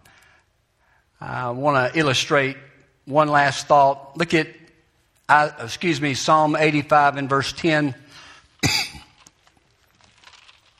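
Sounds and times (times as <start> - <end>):
speech: 1.2 - 4.6, 5.3 - 8.8
person coughing harshly: 8.6 - 9.2.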